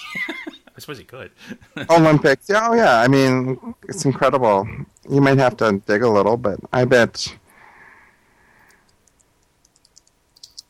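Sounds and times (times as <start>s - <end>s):
speech: 0.8s - 7.4s
computer keyboard typing: 8.6s - 10.6s.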